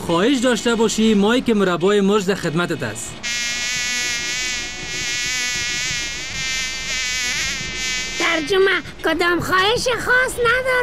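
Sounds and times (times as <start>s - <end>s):
speech: 0.1s - 3.4s, 8.4s - 10.8s
fly buzzing: 3.2s - 9.0s.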